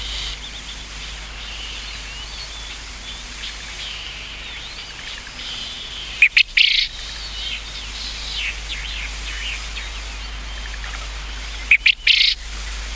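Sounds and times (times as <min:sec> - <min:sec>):
faint birds chirping: 0:00.0 - 0:12.9
Japanese quail harsh stuttered three-part call: 0:06.1 - 0:06.9, 0:11.7 - 0:12.4.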